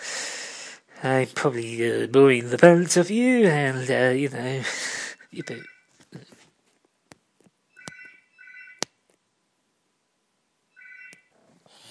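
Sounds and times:
speech: 0:01.0 - 0:06.3
telephone ringing in warbling electronic trills: 0:07.7 - 0:08.8, 0:10.7 - 0:11.4.

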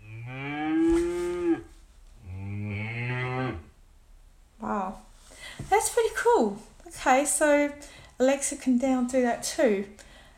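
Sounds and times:
cow mooing: 0:00.0 - 0:03.7
speech: 0:06.4 - 0:10.1.

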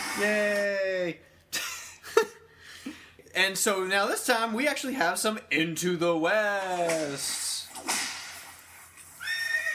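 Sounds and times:
speech: 0:00.2 - 0:01.3, 0:03.4 - 0:07.4
horse whinnying loudly: 0:09.2 - 0:09.7.

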